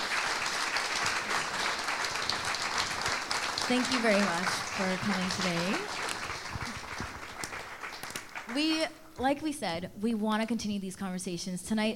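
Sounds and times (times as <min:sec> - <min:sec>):
audience applauding: 0:00.0 - 0:08.8
speech: 0:03.7 - 0:06.0, 0:08.6 - 0:11.9.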